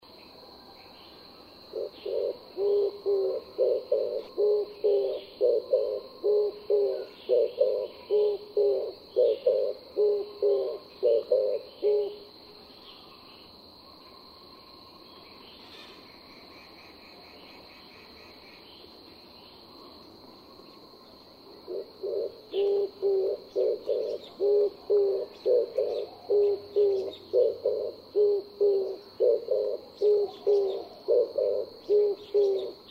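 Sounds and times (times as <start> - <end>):
oriental turtle dove calling: 1.7 - 12.3, 21.7 - 32.9.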